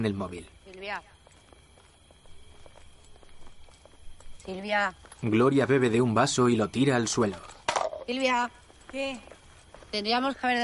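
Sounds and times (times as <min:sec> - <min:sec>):
speech: 0:00.0 - 0:01.2, 0:04.5 - 0:09.3, 0:09.9 - 0:10.6
low constant hiss: 0:00.0 - 0:10.6
footsteps of two people walking along a road at night: 0:00.6 - 0:06.0, 0:08.2 - 0:10.6.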